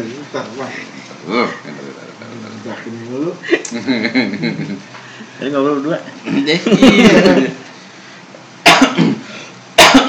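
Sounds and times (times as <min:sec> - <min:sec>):
speech: 0:00.0 - 0:01.8, 0:02.6 - 0:07.6
laughter: 0:03.4 - 0:04.9, 0:06.5 - 0:07.6
person coughing: 0:08.6 - 0:10.0.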